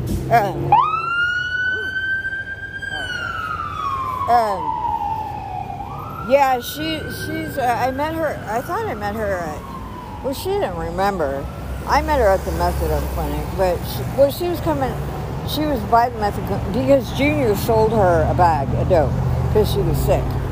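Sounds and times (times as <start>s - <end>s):
speech: 0.3s - 0.9s, 4.3s - 4.8s, 6.3s - 20.4s
police car siren wailing on a street: 0.4s - 13.8s.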